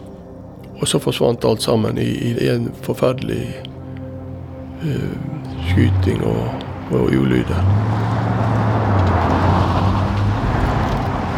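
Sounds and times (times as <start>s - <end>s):
speech: 0.8s - 3.7s, 4.8s - 8.3s
vehicle engine idling: 4.2s - 11.3s.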